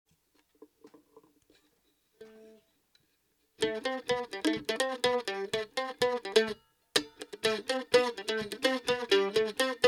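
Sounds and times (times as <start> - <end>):
acoustic mandolin noodling: 3.6 - 9.8.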